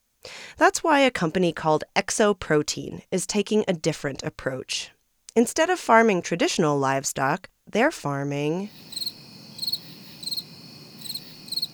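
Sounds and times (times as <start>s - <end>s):
soft steady hiss: 0.0s - 11.7s
speech: 0.6s - 9.1s
crickets chirping in trilled bursts: 8.7s - 11.7s.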